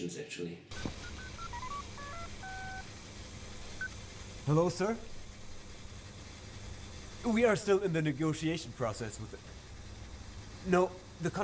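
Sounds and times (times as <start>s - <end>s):
speech: 0.0s - 1.1s, 4.5s - 5.1s, 7.2s - 9.6s, 10.6s - 11.4s
steady low hum: 0.4s - 11.4s
telephone keypad dialing tones: 0.7s - 2.8s.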